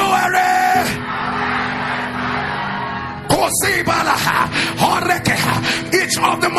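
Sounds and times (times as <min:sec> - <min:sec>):
large audience shouting loudly in unison: 0:00.2 - 0:03.3
dense steady crowd roar: 0:00.2 - 0:03.6
speech: 0:03.5 - 0:06.5.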